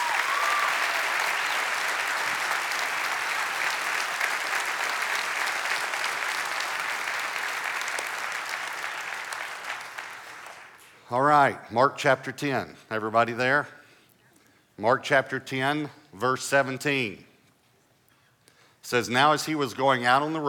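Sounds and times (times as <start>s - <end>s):
audience applause thanking a guest: 0.0s - 10.8s
speech: 11.1s - 13.8s, 14.8s - 17.3s, 18.8s - 20.4s.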